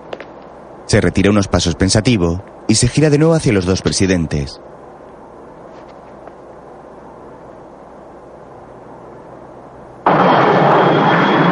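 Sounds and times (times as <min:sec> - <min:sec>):
faint high whine: 0:00.0 - 0:11.5
speech: 0:00.9 - 0:04.7
jet plane roaring in flight: 0:10.0 - 0:11.5.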